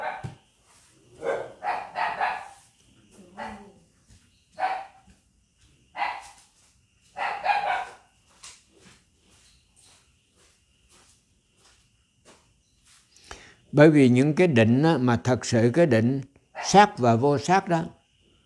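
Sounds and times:
dog barking: 0:00.0 - 0:00.4, 0:01.2 - 0:02.6, 0:03.3 - 0:03.8, 0:04.6 - 0:05.0, 0:06.0 - 0:06.4, 0:07.2 - 0:08.1, 0:16.6 - 0:16.9
speech: 0:13.8 - 0:18.0.

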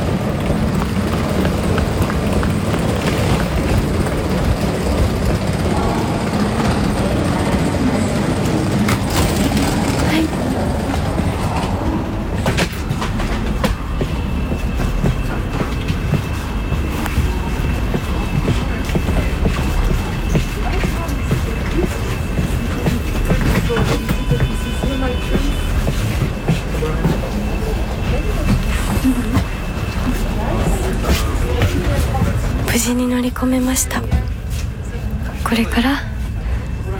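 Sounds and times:
passenger train running on rails: 0:00.0 - 0:36.9
speech: 0:33.4 - 0:34.1, 0:35.5 - 0:36.1.

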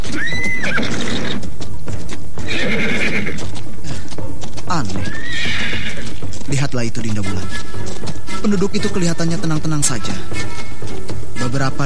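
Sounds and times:
loud shrill horse whinny: 0:00.0 - 0:01.5, 0:02.4 - 0:03.5, 0:05.0 - 0:06.2
heavy horse hooves stamping on snakes near Bukit Tunggul hill: 0:00.0 - 0:11.8
speech: 0:06.8 - 0:10.8, 0:11.5 - 0:11.8.

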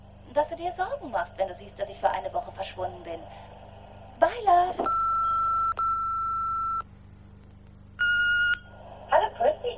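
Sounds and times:
faint low hum: 0:00.0 - 0:09.7
speech: 0:00.4 - 0:03.5, 0:04.2 - 0:05.1
electronic answering machine beeps: 0:04.8 - 0:06.9, 0:08.0 - 0:08.7.

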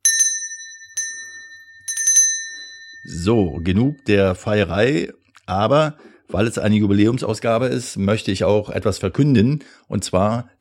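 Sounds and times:
small table bell ringing: 0:00.0 - 0:04.4
speech: 0:03.0 - 0:10.5.

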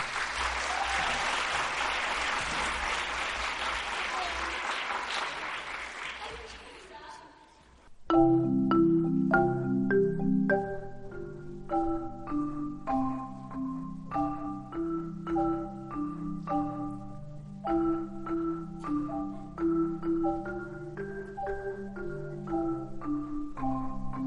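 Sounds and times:
audience applause at a music school summer festival in Guadalix de la Sierra: 0:00.0 - 0:07.0
instrumental music with plucked and sustained notes: 0:07.9 - 0:24.2.

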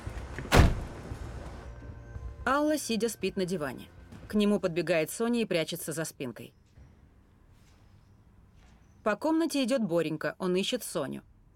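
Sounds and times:
van door slamming shut: 0:00.3 - 0:01.1
speech: 0:02.5 - 0:06.6, 0:09.0 - 0:11.3.

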